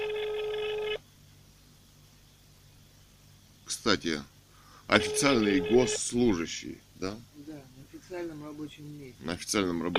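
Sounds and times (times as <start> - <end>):
telephone ringback tone: 0.0 - 1.0, 4.9 - 6.0
speech: 3.8 - 4.3, 4.9 - 9.9.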